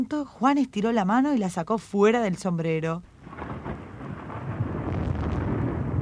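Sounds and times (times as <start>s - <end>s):
speech: 0.0s - 3.1s
steady rain: 3.1s - 6.0s.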